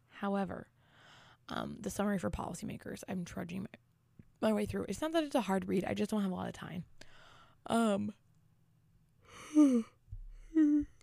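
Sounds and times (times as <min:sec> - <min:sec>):
speech: 0:00.2 - 0:00.8, 0:01.5 - 0:03.8, 0:04.4 - 0:07.0, 0:07.6 - 0:08.2, 0:09.6 - 0:10.0
breathy yawn: 0:09.3 - 0:11.0.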